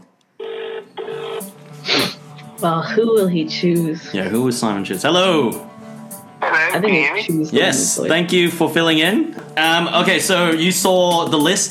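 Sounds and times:
outgoing phone call electronic ring tones: 0.4s - 1.6s
speech: 2.6s - 5.7s, 6.8s - 11.6s.

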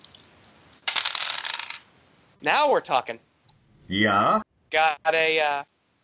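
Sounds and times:
ten-sided die and six-sided die clattering across a hard surface: 0.0s - 1.9s
speech: 2.4s - 3.3s, 3.9s - 5.7s.

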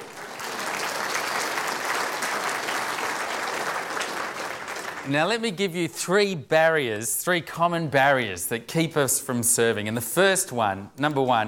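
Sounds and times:
audience clapping: 0.0s - 5.4s
speech: 5.0s - 11.4s.

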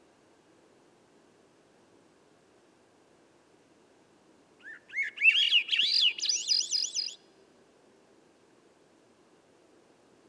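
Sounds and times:
Swainson's thrush singing at dusk in a red alder by a campsite: 4.7s - 7.2s.

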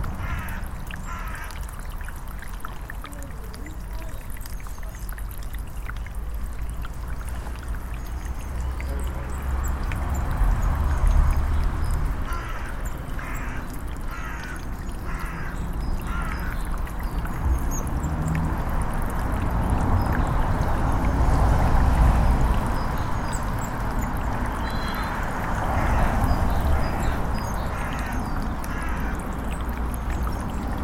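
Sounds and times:
low traffic rumble: 0.0s - 30.8s
steady rushing water by a solar powered water pump: 0.0s - 30.8s
crows cawing: 0.2s - 1.6s, 12.2s - 16.7s, 24.6s - 29.4s.

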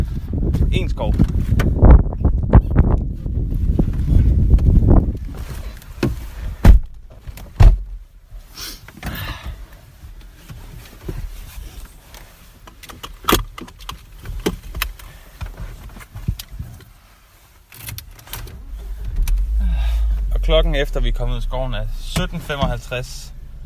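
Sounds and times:
steady low rumble inside a car cabin: 0.3s - 8.1s, 18.2s - 23.6s
speech: 0.7s - 1.7s, 20.8s - 23.4s.

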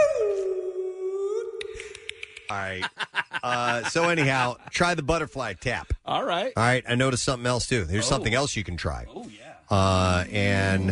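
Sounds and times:
person imitating a humpback whale call with their voice: 0.0s - 1.7s
speech: 2.5s - 10.8s
laughter: 2.6s - 4.8s.

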